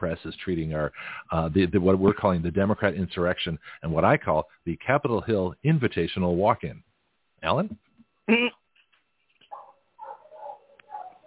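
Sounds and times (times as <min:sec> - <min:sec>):
speech: 0:00.0 - 0:08.6
neighbor's dog barking in Belize: 0:09.5 - 0:11.2.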